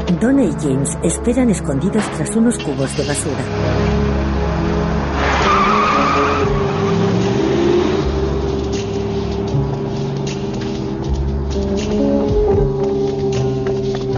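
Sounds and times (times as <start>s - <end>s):
speech: 0.2s - 3.9s
car engine roaring as the vehicle speeds off: 3.0s - 14.1s
tires squealing and skidding on the pavement: 3.5s - 12.3s.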